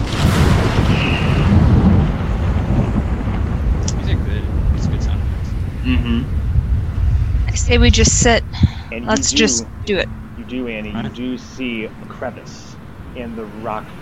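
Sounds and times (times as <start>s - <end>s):
deep continuous rumble of thunder: 0.0s - 14.0s
strong wind roaring: 0.0s - 14.0s
speech: 6.1s - 6.4s, 7.7s - 14.0s
faint higher tones: 7.8s - 14.0s.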